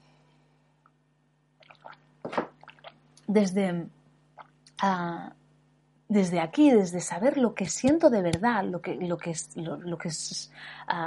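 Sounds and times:
speech: 3.3s - 4.0s, 4.8s - 5.4s, 6.1s - 11.0s
wet mouth clicks: 4.4s - 4.8s.

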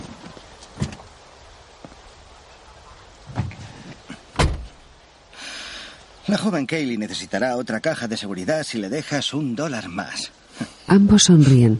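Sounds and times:
soft thumps and rustles of a man getting into a car: 0.0s - 1.1s, 3.3s - 4.8s
car door slamming: 4.4s - 4.7s
speech: 6.3s - 11.7s.

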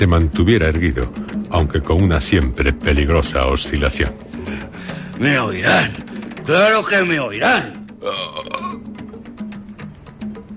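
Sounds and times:
speech: 0.0s - 8.6s
long rattling burp: 7.7s - 9.2s.

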